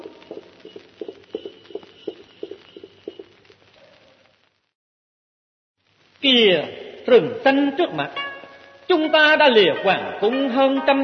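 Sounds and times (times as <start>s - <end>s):
saddled horse hooves clip-clopping: 0.0s - 3.6s
speech: 6.2s - 8.2s, 8.9s - 11.0s.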